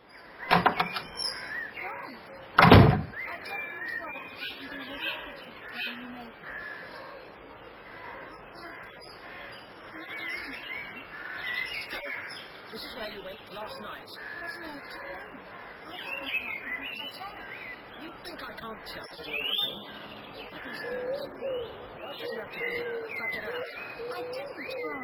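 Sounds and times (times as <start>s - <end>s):
birds chirping outdoors: 0.0s - 25.0s
cottage door opening with sharp clunks in Norbury: 0.5s - 1.4s, 2.6s - 3.2s
speech: 16.0s - 25.0s.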